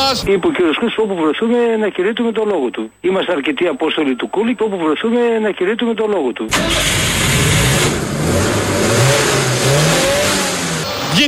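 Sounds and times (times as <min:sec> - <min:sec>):
speech: 0:00.0 - 0:09.1
loud engine revving: 0:06.5 - 0:11.1.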